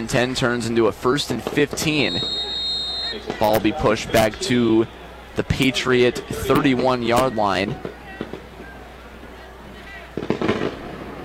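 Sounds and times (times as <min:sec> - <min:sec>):
speech: 0:00.0 - 0:02.4, 0:03.1 - 0:07.9
steady outdoor hum: 0:00.0 - 0:11.2
fireworks popping and crackling: 0:01.2 - 0:04.6, 0:07.6 - 0:08.8, 0:10.1 - 0:11.2.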